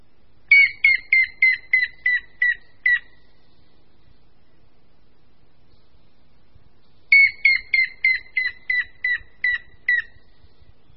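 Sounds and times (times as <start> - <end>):
grey-headed woodpecker whistled call: 0.5 - 3.3, 7.1 - 10.4.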